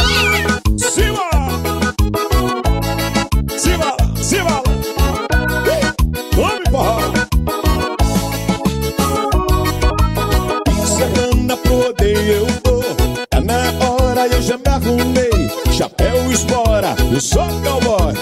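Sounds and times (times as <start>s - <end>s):
cat meowing: 0.0s - 0.6s
loud rhythmic music: 0.0s - 18.2s.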